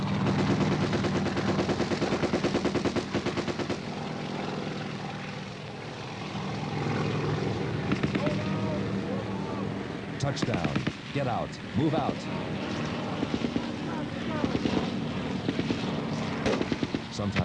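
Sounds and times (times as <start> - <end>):
helicopter door gunner machine gun fire: 0.0 - 4.0, 7.9 - 8.5, 10.4 - 11.0, 13.2 - 17.1
helicopter rotor roar and thump: 0.0 - 17.4
speech: 10.3 - 12.6, 17.2 - 17.4.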